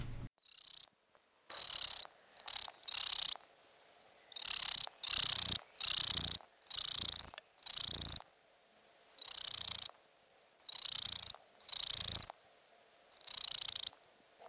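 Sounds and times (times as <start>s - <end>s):
European greenfinch fledgling begging with buzzy vibrating notes: 0.0s - 0.9s, 1.5s - 3.4s, 4.2s - 8.2s, 9.1s - 10.0s, 10.6s - 12.3s, 13.1s - 14.4s.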